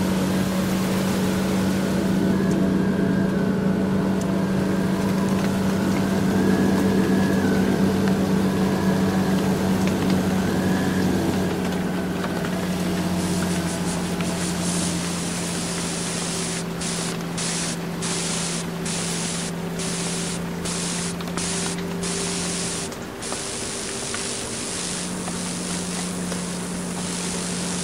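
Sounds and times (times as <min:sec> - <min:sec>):
truck driving at fifty miles per hour: 0:00.0 - 0:27.8.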